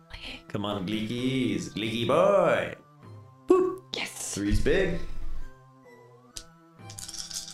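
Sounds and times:
speech: 0.5s - 2.8s, 4.4s - 5.1s
dice rolling on a tabletop: 6.9s - 7.5s.

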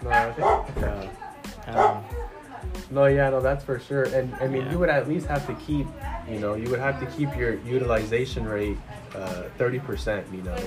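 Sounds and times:
several dogs barking with short yips: 0.0s - 2.5s
speech: 2.9s - 10.6s.

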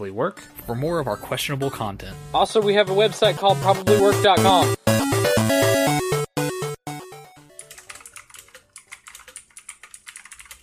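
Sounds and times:
speech: 0.0s - 5.1s
tonal music: 0.6s - 8.6s
fast typing on a computer keyboard: 7.5s - 10.6s.

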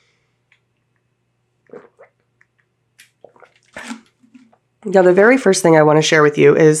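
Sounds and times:
faint steady hum: 0.0s - 6.7s
person sipping water and swallowing: 1.6s - 4.7s
speech: 4.8s - 6.7s.

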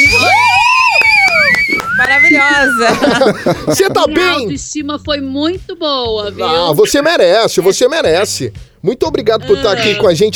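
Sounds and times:
excited audience screaming and cheering: 0.0s - 2.9s
shrill sustained whistles: 0.0s - 2.9s
scattered applause: 0.5s - 2.4s
laughter: 2.6s - 4.1s
speech: 2.7s - 10.3s.

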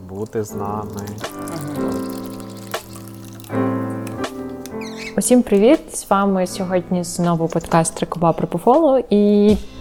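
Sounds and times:
drink pouring into a cup: 0.0s - 4.3s
soft intro music: 0.0s - 8.2s
speech: 0.1s - 2.1s, 5.2s - 9.7s.

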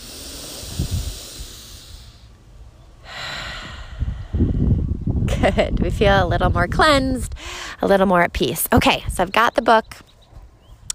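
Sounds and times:
deep breath in and out during a breathing exercise: 0.0s - 2.4s, 3.0s - 5.0s, 7.3s - 7.8s
soft low rumbling: 0.0s - 9.2s
speech: 5.4s - 10.1s.

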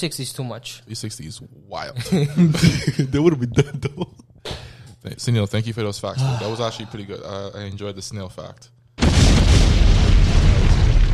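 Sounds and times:
speech: 0.0s - 8.8s
explosion sound effect: 9.0s - 11.1s.

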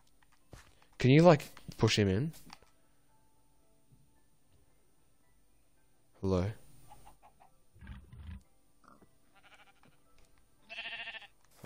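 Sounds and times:
soft rustling video game noises: 0.0s - 11.6s
speech: 1.0s - 2.4s, 6.2s - 6.6s
sheep bleating in video game: 9.0s - 11.4s.

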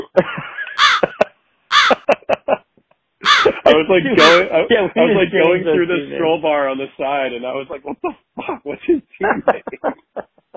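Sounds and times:
laughter: 0.0s - 2.7s, 3.3s - 6.1s, 7.7s - 10.5s
crow cawing: 0.8s - 1.1s, 1.7s - 2.0s, 3.2s - 4.5s
speech: 3.8s - 10.0s.

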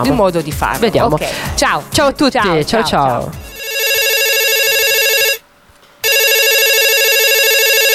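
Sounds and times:
speech: 0.0s - 3.5s
telephone ringing with electronic trills: 3.4s - 5.4s, 6.0s - 7.9s.

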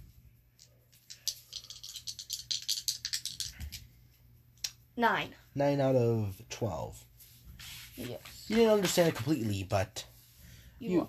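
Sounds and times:
dice rattling and clattering across a hard tabletop: 0.6s - 3.8s
speech: 5.0s - 7.1s, 8.0s - 10.1s, 10.8s - 11.0s.

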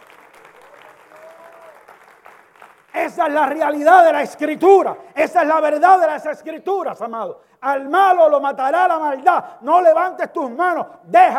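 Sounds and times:
audience applauding God: 0.0s - 3.6s
speech: 3.0s - 11.3s.

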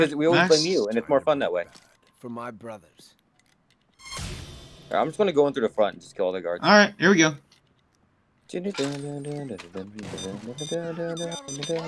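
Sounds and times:
man talking loudly: 0.0s - 1.0s
speech: 0.0s - 3.2s, 4.9s - 7.5s, 8.5s - 11.8s
video game alarm with high-pitched electronic tones: 10.0s - 11.8s.

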